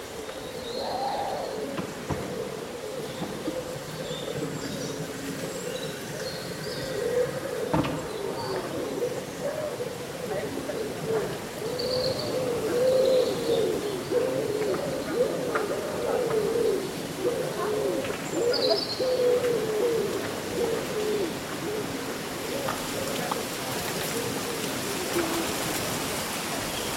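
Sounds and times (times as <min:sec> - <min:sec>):
leaves rustling in a summer breeze: 0:00.0 - 0:26.9
low cooing calls: 0:00.0 - 0:26.9.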